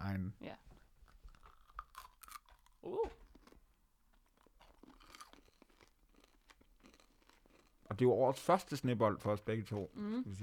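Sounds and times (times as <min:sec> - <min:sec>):
biting and crunching on hard candy: 0:01.3 - 0:08.0
speech: 0:02.8 - 0:03.2, 0:08.0 - 0:10.4.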